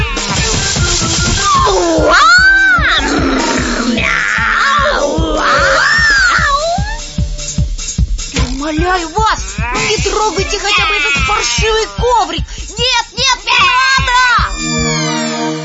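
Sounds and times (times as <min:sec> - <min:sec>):
cats meowing: 0:00.0 - 0:00.5, 0:01.6 - 0:07.0, 0:09.2 - 0:12.0
steady pulsing rhythmic backing music: 0:00.0 - 0:15.6
speech: 0:11.4 - 0:12.6.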